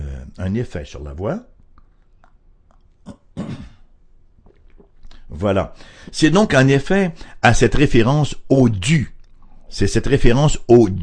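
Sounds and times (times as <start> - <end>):
speech: 0.4 - 1.5, 5.4 - 9.1, 9.7 - 11.0
person sipping and swallowing water: 1.7 - 3.8, 4.4 - 5.3, 9.2 - 9.7.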